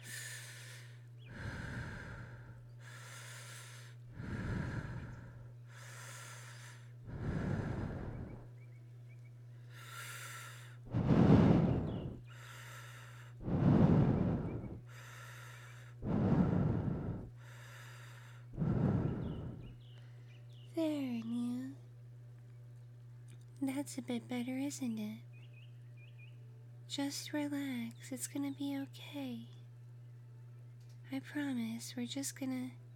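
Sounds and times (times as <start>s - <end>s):
guided deep breathing with slow inhales and exhales: 0.0s - 8.6s, 9.5s - 20.3s
low constant hum: 0.0s - 32.9s
speech: 23.7s - 25.3s, 27.0s - 29.6s, 31.1s - 32.8s.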